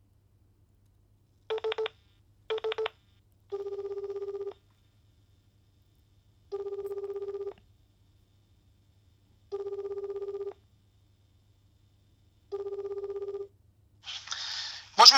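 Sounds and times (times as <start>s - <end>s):
low steady hum: 0.0s - 15.1s
electronic telephone dialing beeps: 1.5s - 1.9s, 2.5s - 2.9s, 6.5s - 7.5s, 9.5s - 10.5s, 12.5s - 13.5s.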